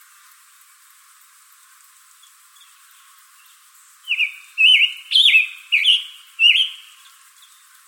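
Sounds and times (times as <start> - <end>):
scarlet tanager singing in Arizona: 2.6 - 7.7.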